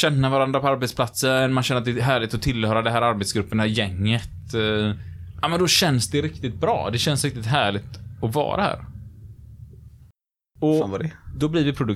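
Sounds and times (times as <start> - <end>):
speech: 0.0 - 8.9, 10.6 - 11.9
motorcycle engine rumble driving past outside open window: 3.3 - 10.1.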